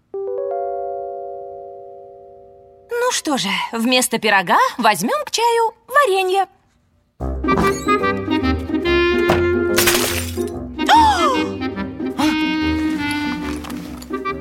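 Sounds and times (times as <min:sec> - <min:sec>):
steady busy music: 0:00.0 - 0:02.9, 0:07.2 - 0:14.3
speech: 0:03.2 - 0:06.6
glass jam jar shards rattling: 0:09.8 - 0:10.6
glass jam jar smashing: 0:09.8 - 0:10.7.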